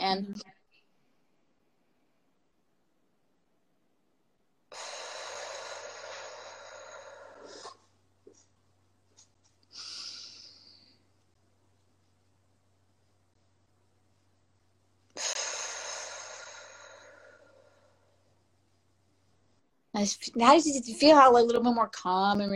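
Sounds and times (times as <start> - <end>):
speech: 0.1 - 0.6, 20.0 - 22.5
paced breathing in through nose and out through mouth: 4.7 - 8.5, 9.7 - 11.0, 15.2 - 18.3.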